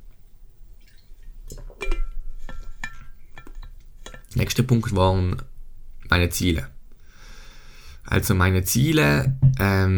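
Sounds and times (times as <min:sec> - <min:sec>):
faint liquid sounds of water in a glass: 0:00.0 - 0:04.5
clinks of a glass being handled: 0:01.5 - 0:04.4
speech: 0:04.4 - 0:05.5, 0:06.1 - 0:06.8, 0:08.1 - 0:09.9.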